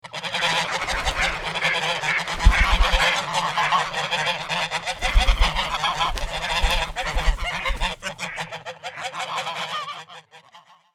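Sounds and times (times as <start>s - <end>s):
flock of ducks quacking: 0.0s - 10.9s
flock of ducks wings flapping: 0.2s - 8.6s.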